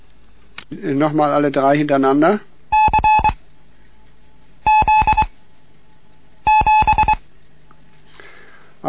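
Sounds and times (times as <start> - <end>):
speech: 0.7 - 2.5
Morse code beeps as steady electronic tones: 2.7 - 3.4, 4.7 - 5.3, 6.5 - 7.2.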